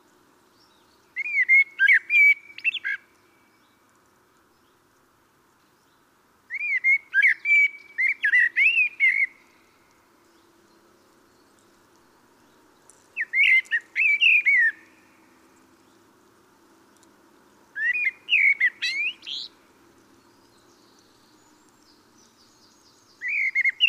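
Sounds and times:
Common blackbird Turdus merula singing fluting song phrases: 0.6 - 3.8, 6.5 - 9.7, 13.2 - 15.2, 17.8 - 19.6, 20.2 - 23.8.

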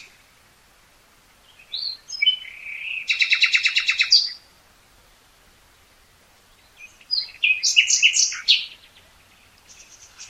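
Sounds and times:
common nightingale Luscinia megarhynchos singing: 0.0 - 0.3, 1.4 - 4.6, 6.0 - 10.2.

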